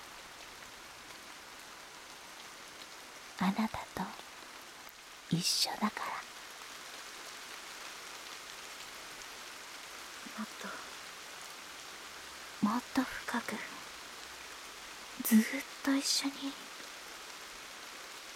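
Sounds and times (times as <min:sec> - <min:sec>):
steady soft hiss of rain: 0:00.0 - 0:18.3
person whispering: 0:03.4 - 0:04.2, 0:05.3 - 0:06.2, 0:10.3 - 0:10.9, 0:12.6 - 0:13.8, 0:15.2 - 0:16.7
speech: 0:03.4 - 0:04.2, 0:05.3 - 0:06.3, 0:15.3 - 0:16.7.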